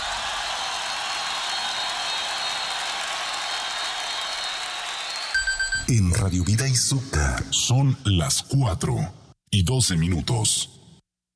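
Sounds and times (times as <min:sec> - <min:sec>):
audience applauding: 0:00.0 - 0:06.6
speech: 0:05.9 - 0:10.8.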